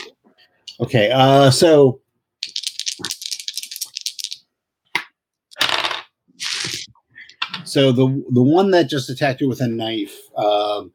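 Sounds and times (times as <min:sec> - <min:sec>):
speech: 0:00.7 - 0:02.0, 0:07.7 - 0:10.9
dice rattling during a tabletop game: 0:02.4 - 0:04.4, 0:05.5 - 0:06.9.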